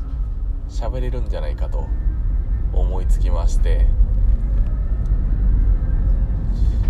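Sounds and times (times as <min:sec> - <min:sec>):
car engine and tire drone: 0:00.0 - 0:06.8
road noise inside a moving car: 0:00.0 - 0:06.8
speech: 0:00.7 - 0:04.1.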